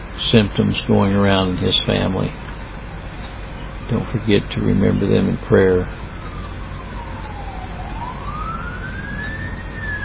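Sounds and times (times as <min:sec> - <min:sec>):
steady rumble of traffic noise: 0:00.0 - 0:10.0
speech: 0:00.3 - 0:02.5, 0:03.9 - 0:06.0
fire truck siren wailing during a morning service: 0:03.9 - 0:10.0.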